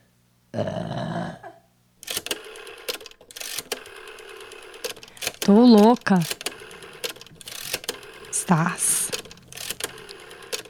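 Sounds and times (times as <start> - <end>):
single loud drawn-out burp in a studio: 0.5 - 1.6
speech: 0.6 - 0.8, 5.5 - 6.4, 8.5 - 9.0.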